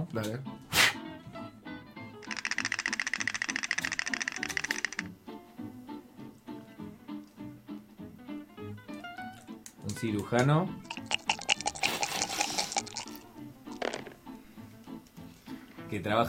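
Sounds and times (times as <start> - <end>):
speech: 0.0 - 0.8, 10.0 - 10.9, 15.9 - 16.2
dice rattling and clattering: 2.2 - 5.1, 10.9 - 14.2.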